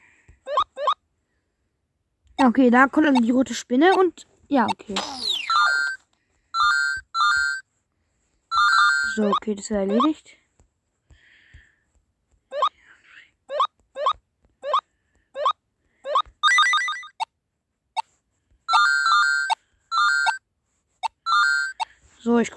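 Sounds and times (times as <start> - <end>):
phone ringtone with electronic chirps and chiming notes: 0.5 - 1.0, 5.3 - 6.0, 6.6 - 7.7, 8.5 - 10.1, 15.4 - 17.3, 18.7 - 20.4, 21.0 - 21.9
speech: 2.4 - 5.3, 9.2 - 10.4, 22.4 - 22.5.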